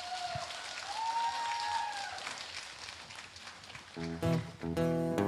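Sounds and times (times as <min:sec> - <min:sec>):
audience cheering for a singer: 0:00.0 - 0:02.6
audience clapping for a singer: 0:00.0 - 0:04.8
speech: 0:04.0 - 0:05.1.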